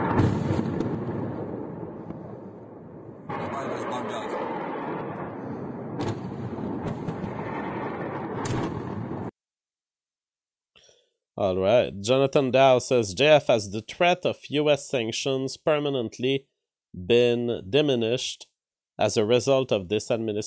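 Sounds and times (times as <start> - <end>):
explosion's heavy rumble: 0.0 - 9.3
missiles being fired: 0.0 - 9.3
speech: 11.4 - 20.4.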